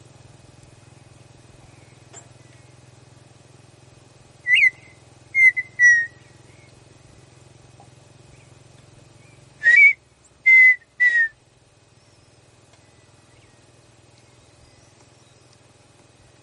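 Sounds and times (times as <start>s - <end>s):
low steady hum: 0.0s - 16.4s
partridge song whistles: 4.4s - 6.7s, 9.6s - 11.4s.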